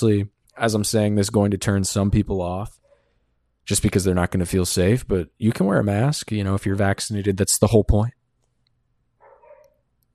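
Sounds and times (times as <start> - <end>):
speech: 0.0 - 2.8, 3.7 - 8.2
neighbor's dog barking faintly: 9.2 - 9.8.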